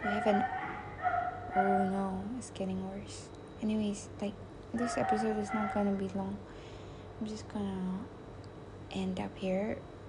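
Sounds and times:
dog barking in high yappy barks: 0.0s - 2.0s, 4.8s - 6.0s
speech: 0.1s - 0.6s, 1.5s - 8.2s, 8.9s - 9.9s.

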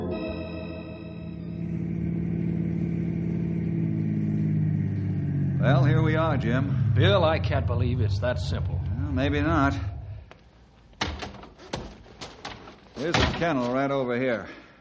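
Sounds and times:
car engine humming while driving with gear changes: 0.1s - 11.4s
speech: 6.3s - 9.9s, 13.0s - 14.6s.

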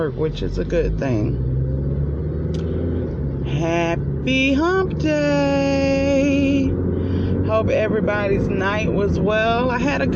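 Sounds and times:
speech: 0.0s - 1.6s, 3.6s - 6.9s, 7.5s - 10.1s
constant road drone: 0.0s - 10.1s
low engine rumble inside a moving car in heavy morning traffic: 0.0s - 10.1s.

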